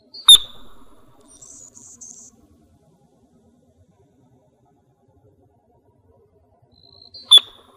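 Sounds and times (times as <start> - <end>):
Anna's hummingbird dive chirp in Arizona: 0.2 - 1.5, 7.2 - 7.6.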